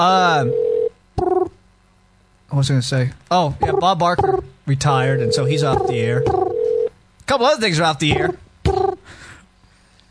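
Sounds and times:
speech: 0:00.0 - 0:01.4, 0:02.5 - 0:06.5, 0:07.3 - 0:08.4
telephone dial tone: 0:05.2 - 0:06.9.

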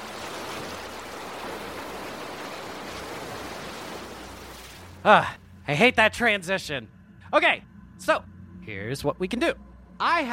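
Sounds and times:
ocean waves lapping: 0:00.0 - 0:05.6
speech: 0:05.0 - 0:10.3.

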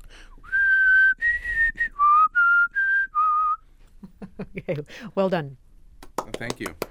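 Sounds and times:
person whistling a fanfare-like theme tune: 0:00.4 - 0:03.6
speech: 0:04.5 - 0:05.6, 0:06.4 - 0:06.9.

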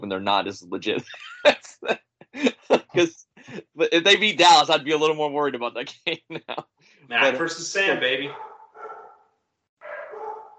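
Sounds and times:
speech: 0:00.0 - 0:03.2, 0:04.0 - 0:08.5
laughter: 0:00.7 - 0:05.0, 0:05.6 - 0:08.3
dog barking: 0:08.3 - 0:09.2, 0:09.8 - 0:10.5.

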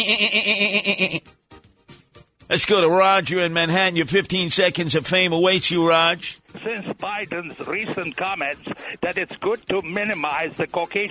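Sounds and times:
billy goat bleating: 0:00.0 - 0:01.2
speech: 0:00.0 - 0:01.4, 0:02.5 - 0:11.0.

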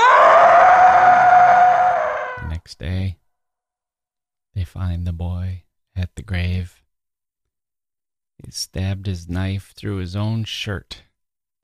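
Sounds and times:
boy screaming in fright: 0:00.0 - 0:02.5
speech: 0:04.6 - 0:06.8, 0:08.4 - 0:11.1.

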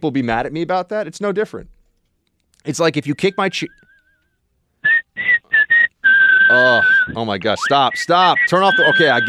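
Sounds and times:
speech: 0:00.0 - 0:01.8, 0:02.6 - 0:03.8, 0:06.5 - 0:09.2
loud shrill human whistling: 0:04.8 - 0:09.2.

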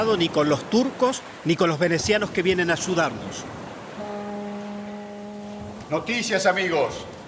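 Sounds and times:
speech: 0:00.0 - 0:03.6, 0:05.9 - 0:07.2
high ocean waves rushing after a storm: 0:00.0 - 0:07.2
deep ship's horn of a ship arriving at a seaport on Cyprus: 0:03.8 - 0:07.1.

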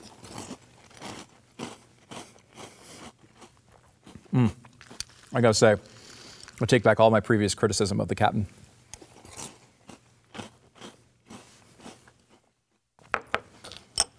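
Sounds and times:
chewing crunchy cereal with milk: 0:00.0 - 0:06.7, 0:09.0 - 0:12.6
speech: 0:04.3 - 0:04.6, 0:05.3 - 0:05.9, 0:06.6 - 0:08.6.

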